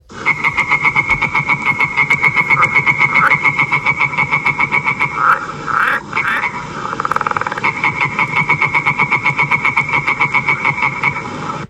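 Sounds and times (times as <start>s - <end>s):
green tree frog: 0.0s - 11.6s.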